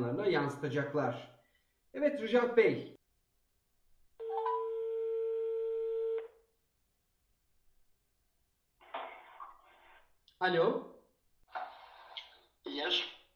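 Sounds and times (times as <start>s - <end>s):
speech: 0.0s - 1.4s, 2.0s - 3.0s, 10.4s - 10.9s
steady electronic telephone tone: 4.2s - 6.4s.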